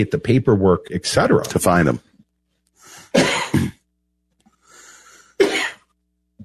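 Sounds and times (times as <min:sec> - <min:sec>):
speech: 0:00.0 - 0:02.1
person coughing harshly: 0:03.1 - 0:03.8, 0:05.4 - 0:05.9
person clearing throat with a raspy breath: 0:03.2 - 0:03.8.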